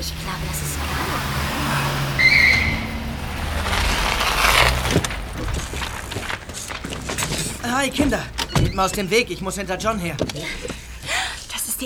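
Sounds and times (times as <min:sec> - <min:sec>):
approaching car engine rumble: 0:00.0 - 0:11.8
broadband road noise: 0:00.0 - 0:11.8
brief high squeal: 0:02.2 - 0:02.9
speech: 0:07.8 - 0:10.7.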